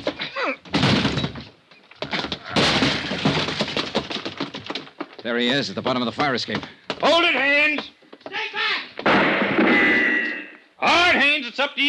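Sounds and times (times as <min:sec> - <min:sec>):
door being battered and forced open by police: 0:00.0 - 0:05.2, 0:09.0 - 0:10.2
door wood cracking and splintering: 0:00.0 - 0:07.1
speech: 0:05.2 - 0:08.0, 0:10.8 - 0:11.8.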